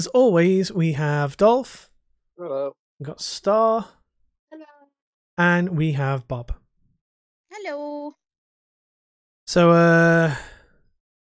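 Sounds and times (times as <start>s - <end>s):
speech: 0.0s - 4.7s, 5.4s - 6.6s, 7.5s - 8.2s, 9.5s - 10.5s
podcast participant yawning: 10.0s - 10.5s.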